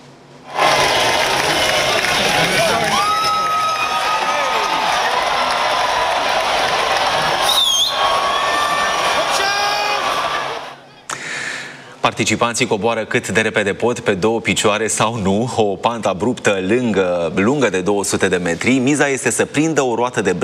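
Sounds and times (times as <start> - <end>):
large outdoor crowd cheering at a cheese-rolling race in England: 0.5 - 11.0
people yelling: 0.5 - 11.0
whistles: 7.4 - 8.8
speech: 12.1 - 20.4.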